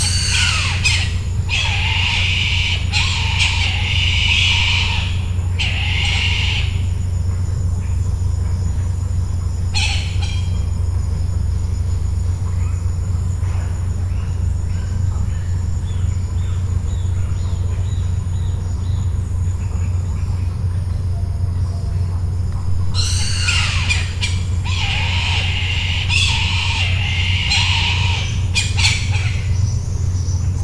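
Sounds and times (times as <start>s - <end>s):
bird squawking harshly: 0.0s - 6.9s, 9.7s - 10.6s, 22.9s - 29.8s
low hum: 0.0s - 30.6s.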